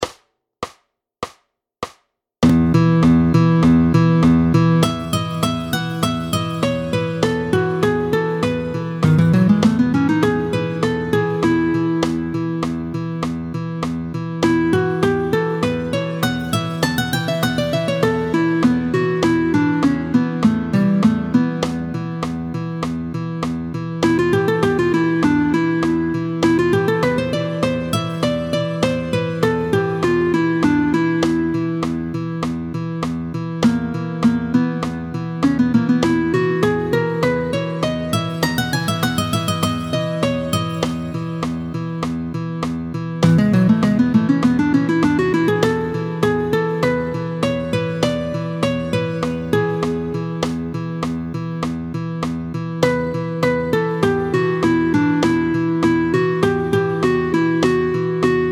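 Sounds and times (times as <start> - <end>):
modal improvisation music in E at tempo 100: 1.8 - 58.5.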